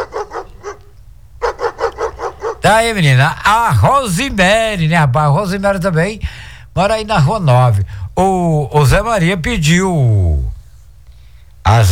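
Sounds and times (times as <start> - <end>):
pack of dogs barking on a street: 0.0 - 3.8
speech: 2.7 - 10.5, 11.7 - 11.9.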